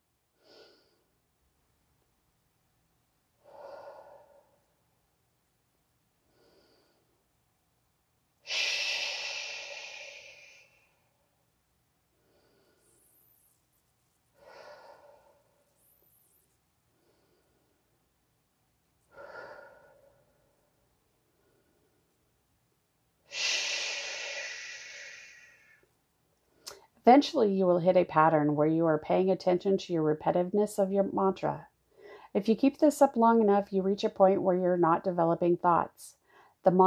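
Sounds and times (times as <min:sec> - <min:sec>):
slow deliberate breathing in and out: 0:00.3 - 0:01.2, 0:03.4 - 0:05.0, 0:06.2 - 0:07.4, 0:08.4 - 0:11.4, 0:12.0 - 0:18.3, 0:19.0 - 0:22.3, 0:23.3 - 0:26.9, 0:31.8 - 0:32.4, 0:36.2 - 0:36.6
speech: 0:27.1 - 0:31.7, 0:32.4 - 0:36.8.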